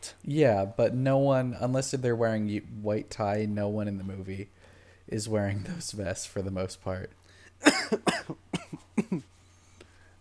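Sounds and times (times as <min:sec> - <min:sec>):
faint steady hum: 0:00.0 - 0:10.1
speech: 0:00.2 - 0:08.5, 0:09.1 - 0:09.3
person coughing fit: 0:07.6 - 0:09.3.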